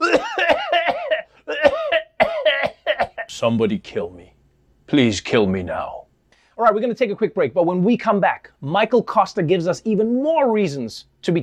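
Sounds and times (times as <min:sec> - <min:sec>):
person coughing: 0:00.0 - 0:03.3
speech: 0:03.4 - 0:04.3, 0:04.9 - 0:06.0, 0:06.6 - 0:11.4.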